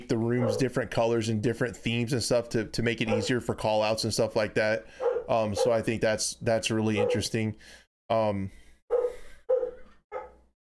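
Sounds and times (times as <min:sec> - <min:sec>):
speech: 0:00.1 - 0:08.6
dog barking: 0:00.4 - 0:00.7, 0:03.1 - 0:03.4, 0:05.0 - 0:05.9, 0:07.0 - 0:07.3, 0:08.9 - 0:10.4.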